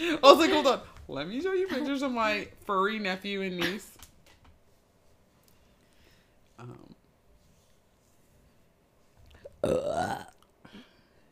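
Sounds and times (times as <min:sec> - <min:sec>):
speech: 0:00.0 - 0:04.0, 0:06.6 - 0:06.9, 0:09.6 - 0:10.3
loud drawn-out burp: 0:09.5 - 0:10.4.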